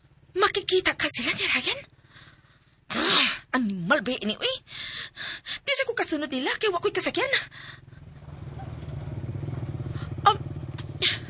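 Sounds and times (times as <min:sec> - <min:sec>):
motorcycle engine thrumming: 0:00.0 - 0:02.8, 0:06.8 - 0:11.2
speech: 0:00.4 - 0:02.0, 0:02.9 - 0:07.8.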